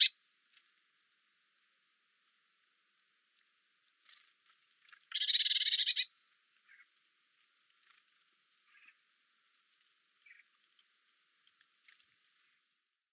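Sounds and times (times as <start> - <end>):
Eurasian blue tit Cyanistes caeruleus harsh buzzy scolding churr: 4.1 - 6.1.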